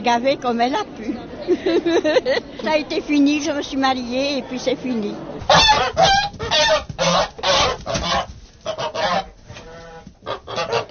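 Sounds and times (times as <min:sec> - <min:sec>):
speech: 0:00.0 - 0:08.2
laughter: 0:00.9 - 0:03.2
group of geese honking on a farm: 0:05.4 - 0:10.8.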